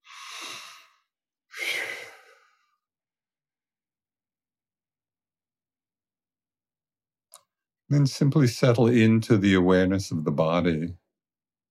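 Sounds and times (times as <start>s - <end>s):
deep breaths during a guided meditation: 0.0s - 2.9s
speech: 7.9s - 11.0s.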